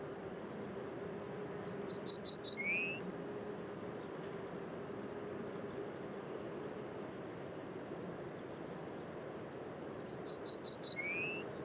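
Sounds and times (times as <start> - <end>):
faint background hiss: 0.0 - 11.6
Ortolan Bunting song at dawn near the Col du Granon, Hautes-Alpes, France: 1.6 - 2.9, 9.8 - 11.4.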